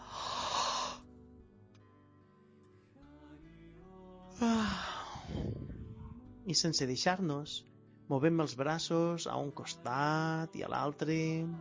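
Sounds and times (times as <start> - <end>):
breathy sigh while stretching arms overhead: 0.0 - 1.0, 4.4 - 5.7
person yawning while stretching arms overhead: 0.0 - 1.0, 4.4 - 5.6
speech: 6.5 - 11.6.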